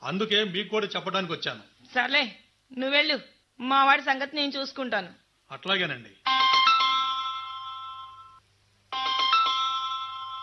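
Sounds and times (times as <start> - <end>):
speech: 0.0 - 6.6
phone ringing with an electronic ringtone: 6.2 - 10.4.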